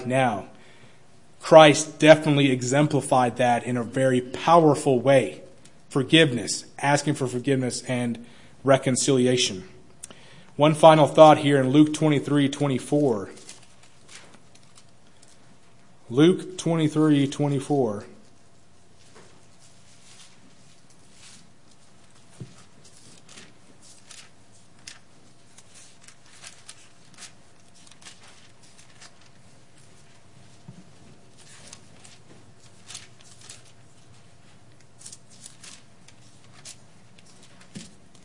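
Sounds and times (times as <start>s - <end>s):
speech: 0.0s - 0.6s, 1.4s - 9.7s, 10.6s - 13.4s, 16.1s - 18.1s
thin pages of a book being turned: 12.9s - 15.4s, 18.2s - 38.2s.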